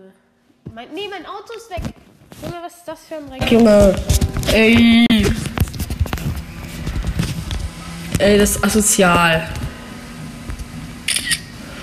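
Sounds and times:
speech: 0.8 - 5.4, 8.2 - 9.6
camera shutter clicks taking a photo: 11.1 - 11.5.

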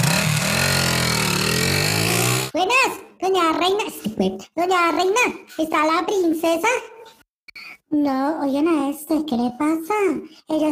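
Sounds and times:
motorcycle engine revving and driving off: 0.0 - 2.6
speech: 3.2 - 7.0, 7.6 - 10.7.

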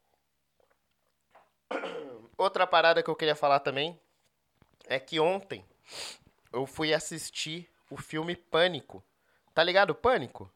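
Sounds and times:
person sipping water: 0.5 - 1.6
speech: 1.7 - 4.0, 4.9 - 10.5.

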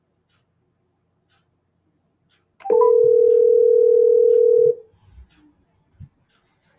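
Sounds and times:
ringback tone on an outgoing phone call through a calling program: 2.6 - 4.8.

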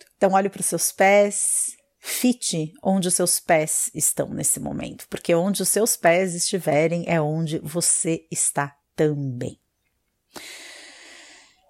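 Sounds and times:
speech: 0.2 - 9.6, 10.3 - 10.6
deep breath during a guided mindfulness exercise: 10.3 - 11.6.

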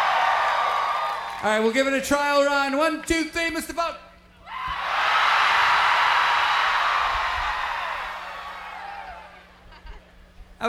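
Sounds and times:
large crowd letting out a sustained loud collective scream: 0.0 - 1.5, 4.4 - 9.6
speech: 1.4 - 4.1.

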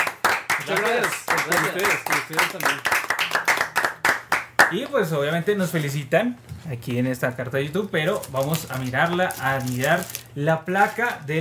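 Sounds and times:
several people clapping: 0.0 - 4.9
speech: 0.7 - 3.0, 4.7 - 11.3.

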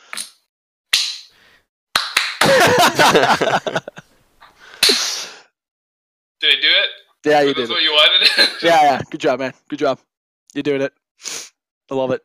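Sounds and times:
several people clapping hands: 2.0 - 3.0
laughter: 2.4 - 4.0, 7.5 - 9.2
speech: 3.0 - 4.0, 6.4 - 12.2.

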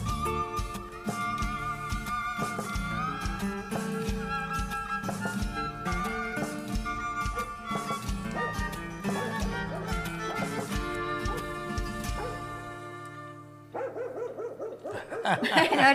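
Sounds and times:
music with steady beat: 0.0 - 13.5
small dog yapping: 7.3 - 12.4, 13.8 - 15.3
laughter: 14.9 - 15.9.

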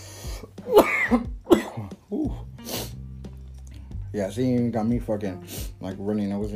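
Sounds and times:
coughing fit: 0.4 - 2.6
speech: 1.1 - 1.3, 4.2 - 6.5.

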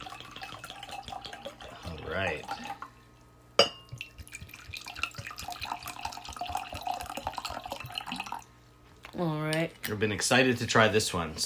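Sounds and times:
still water of medium TDS pouring into a glass: 0.0 - 3.3, 3.9 - 8.5
speech: 2.1 - 2.8, 9.2 - 11.4
glass clink: 3.6 - 4.1.

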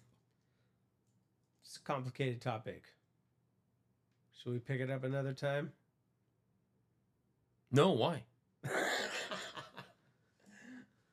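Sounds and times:
speech: 1.9 - 3.0, 4.4 - 5.8, 7.7 - 8.8
harsh coughing fit: 8.7 - 9.7.

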